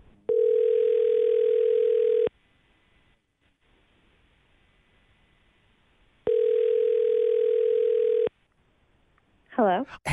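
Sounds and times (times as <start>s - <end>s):
outgoing phone call ringback tone: 0.3s - 2.3s, 6.3s - 8.3s.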